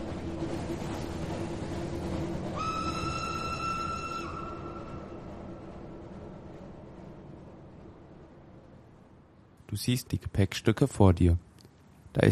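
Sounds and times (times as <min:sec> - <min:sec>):
train wheels rolling along rails under a cattle-wagon transport: 0:00.0 - 0:10.9
sustained high whistle tone: 0:02.5 - 0:05.3
speech: 0:09.7 - 0:11.5.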